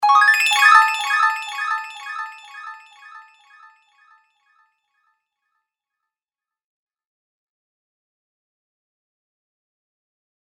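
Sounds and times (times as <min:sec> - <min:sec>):
magical sparkle fantasy sound effect: 0:00.0 - 0:03.6.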